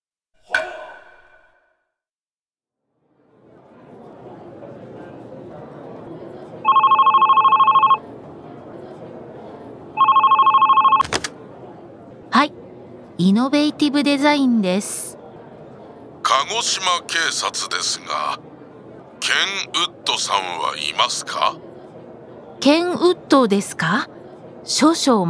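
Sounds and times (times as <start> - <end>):
low murmur of office noise: 3.2 - 25.2
company telephone ringing in electronic trilling bursts: 6.6 - 8.0, 10.0 - 11.0
speech: 13.2 - 15.1, 16.4 - 18.4, 19.3 - 21.6, 22.6 - 25.2.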